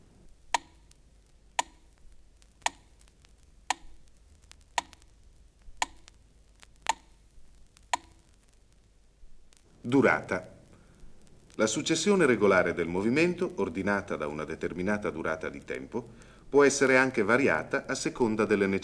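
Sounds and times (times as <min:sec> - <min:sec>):
metronome ticking at 60 beats per minute: 0:00.5 - 0:00.8, 0:01.6 - 0:01.8, 0:02.6 - 0:02.9, 0:03.7 - 0:04.0, 0:04.7 - 0:05.1, 0:05.8 - 0:06.1, 0:06.8 - 0:07.1, 0:07.9 - 0:08.2
speech: 0:09.9 - 0:10.6, 0:11.6 - 0:18.8.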